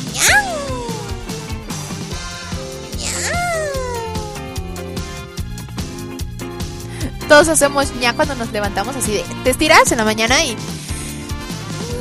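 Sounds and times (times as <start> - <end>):
human voice imitating a kitten's meow: 0.0 - 1.6, 3.0 - 5.2, 11.8 - 11.9
steady music: 0.0 - 11.9
speech: 7.3 - 10.7.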